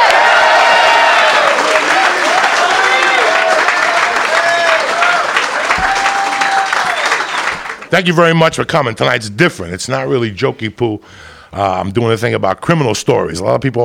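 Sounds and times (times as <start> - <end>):
audience cheering and whooping: 0.0 - 7.8
audience applause: 0.0 - 8.3
speech: 7.9 - 13.8.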